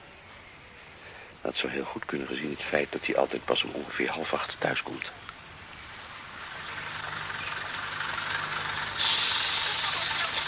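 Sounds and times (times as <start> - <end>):
speech: 1.4 - 5.3
city bus engine idling with a low rumble: 2.6 - 10.4
city bus air brakes hissing: 6.4 - 10.4.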